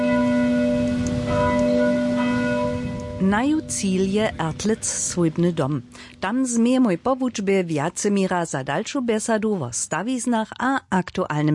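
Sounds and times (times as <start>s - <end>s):
church bells of the neighbouring parish church beside a school ringing: 0.0s - 5.9s
speech: 3.2s - 11.5s.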